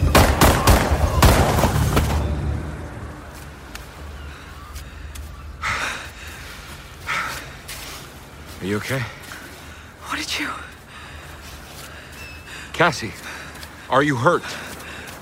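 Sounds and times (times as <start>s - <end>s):
gunshots: 0.1s - 2.3s
speech: 8.8s - 9.2s, 10.4s - 10.7s, 12.8s - 13.3s, 13.9s - 14.7s.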